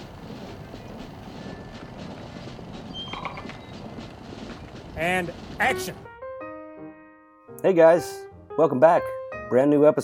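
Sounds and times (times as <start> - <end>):
horses' hooves clip-clopping: 0.0 - 6.1
dense steady rumble of wind: 0.0 - 6.2
speech: 5.0 - 6.1, 7.6 - 10.0.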